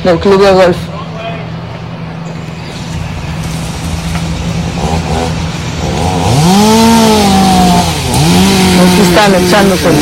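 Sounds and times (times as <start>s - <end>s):
speech: 0.0s - 1.0s, 9.2s - 9.9s
chainsaw engines droning while cutting tree trunks: 1.0s - 9.9s
chainsaw revving into high whine biting into wood: 4.7s - 9.9s.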